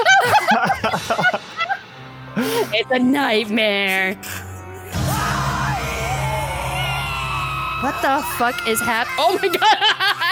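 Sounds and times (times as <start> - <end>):
laughter: 0.0 - 1.8, 8.8 - 10.3
speech: 1.0 - 1.4, 2.4 - 4.4, 7.8 - 10.3
two people screaming at each other: 5.0 - 9.8.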